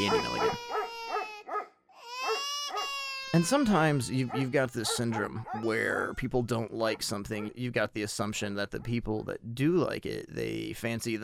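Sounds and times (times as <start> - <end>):
dog barking: 0.0 - 2.4, 4.3 - 5.8, 7.0 - 7.6
speech: 3.3 - 11.2.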